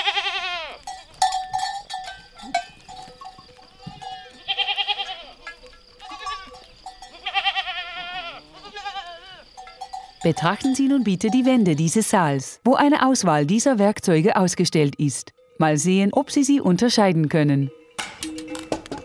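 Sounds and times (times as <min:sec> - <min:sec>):
goats bleating: 0:00.0 - 0:00.9, 0:04.2 - 0:09.5
shepherds' metal herd bells jangling: 0:00.8 - 0:07.8, 0:09.5 - 0:12.4, 0:17.7 - 0:19.0
speech: 0:10.2 - 0:17.8.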